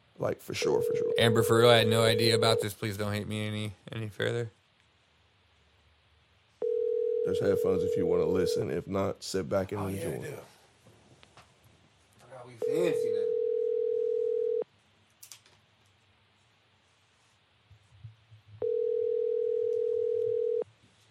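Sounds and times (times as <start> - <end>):
speech: 0.2 - 4.6, 7.2 - 10.5, 12.5 - 13.2
telephone ringback tone of an unanswered call: 0.8 - 2.7, 6.6 - 8.6, 12.6 - 14.6, 18.6 - 20.6.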